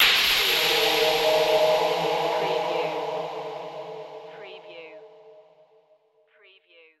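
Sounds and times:
vocal hit: 0.0s - 5.6s.

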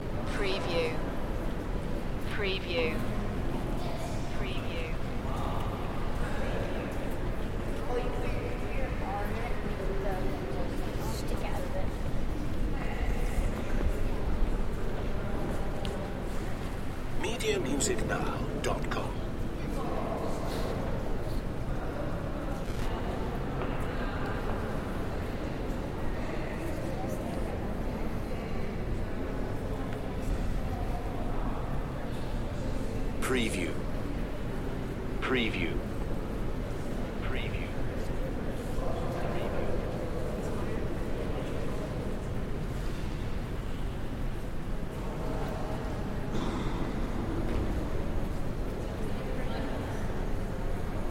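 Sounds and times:
roomy museum ambience in New York: 0.0s - 51.0s.

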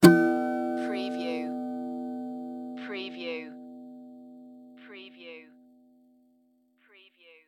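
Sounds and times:
cartoon guitar string hit: 0.0s - 5.0s.

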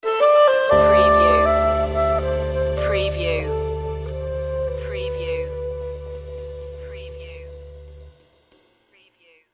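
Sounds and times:
musical sting: 0.7s - 8.1s.

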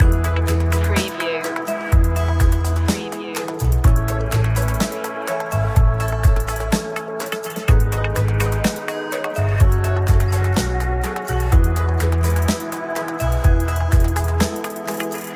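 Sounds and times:
positive flow music loop: 0.0s - 15.3s.

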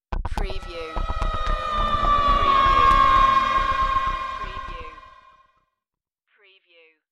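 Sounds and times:
falling whoosh: 0.6s - 5.4s
sci-fi audio logo ident: 0.6s - 5.4s.

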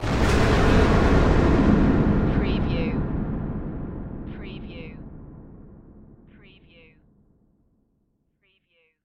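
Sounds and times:
impact hit: 0.0s - 6.4s.

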